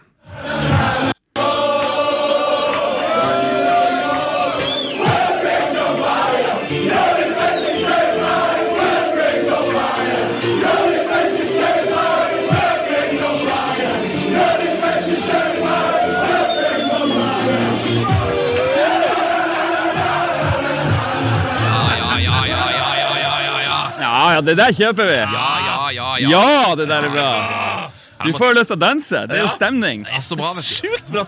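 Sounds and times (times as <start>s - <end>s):
packed pub of football fans singing a chant: 0.2s - 24.1s
football fans cheering in a pub: 2.0s - 11.8s, 14.4s - 27.9s
laughter: 21.2s - 28.6s, 29.3s - 31.2s
speech: 24.5s - 31.2s.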